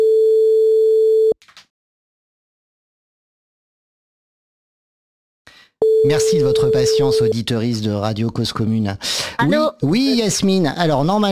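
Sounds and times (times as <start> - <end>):
telephone ringing tone of an outgoing call: 0.0 - 1.4, 5.8 - 7.4
speech: 6.0 - 11.2.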